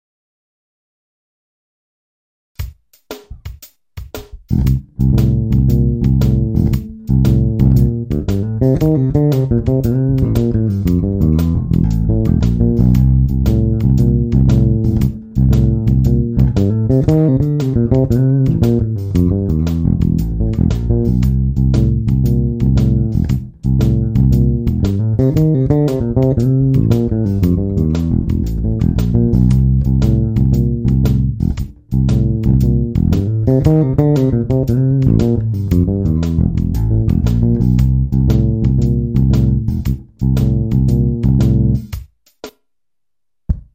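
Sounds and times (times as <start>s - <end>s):
C7 shuffle bass fill: 4.2s - 42.0s.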